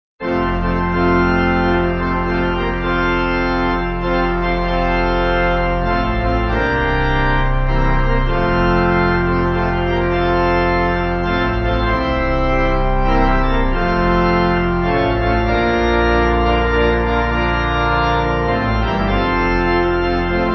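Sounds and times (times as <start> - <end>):
pipe music: 0.2 - 20.5.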